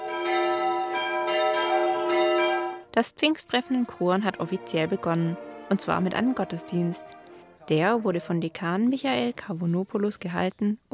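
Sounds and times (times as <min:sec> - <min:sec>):
church bells ringing to open a Pentecost gathering at a former village: 0:00.0 - 0:02.9, 0:03.5 - 0:08.1
speech: 0:03.0 - 0:10.9.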